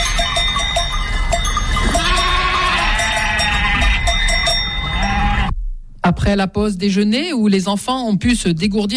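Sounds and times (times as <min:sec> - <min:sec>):
clanking bells of a moving flock: 0:00.0 - 0:05.5
sheep and ewes bleating: 0:01.8 - 0:05.5
speech: 0:06.1 - 0:08.9.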